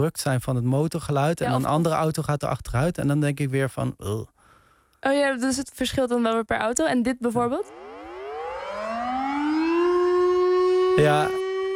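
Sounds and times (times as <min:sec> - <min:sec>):
speech: 0:00.0 - 0:04.3, 0:05.0 - 0:07.8, 0:11.0 - 0:11.4
civil defense siren wailing during its monthly noon test: 0:07.7 - 0:11.7.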